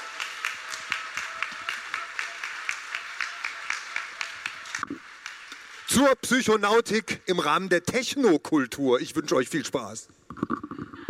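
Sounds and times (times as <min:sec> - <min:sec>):
audience applauding: 0:00.0 - 0:06.6
speech: 0:06.0 - 0:10.2.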